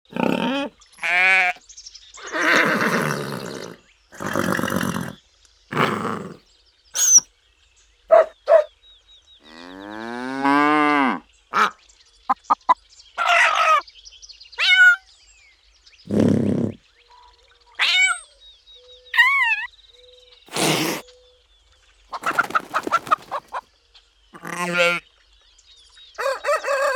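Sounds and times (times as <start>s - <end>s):
farm animal sounds: 0.1s - 1.6s, 2.2s - 6.4s, 8.1s - 8.7s, 9.4s - 13.8s, 14.6s - 15.0s, 16.1s - 16.8s, 17.8s - 18.3s, 22.1s - 23.6s, 24.4s - 25.0s, 26.2s - 26.9s.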